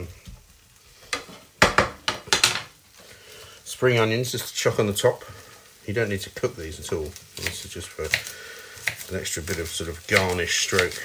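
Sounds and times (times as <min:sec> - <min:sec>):
faint sizzle of leftover pasta heating in a pan: 0:00.0 - 0:11.0
speech: 0:03.8 - 0:11.0
leftover pasta stirred and scraped around a hot pan: 0:06.9 - 0:11.0.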